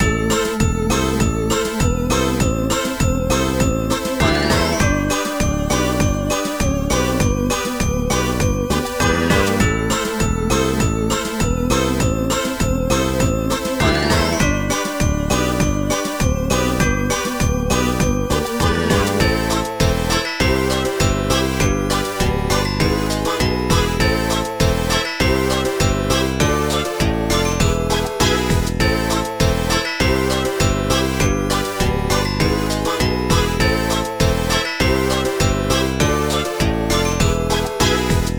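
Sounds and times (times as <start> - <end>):
lobby background music: 0.0 - 38.3.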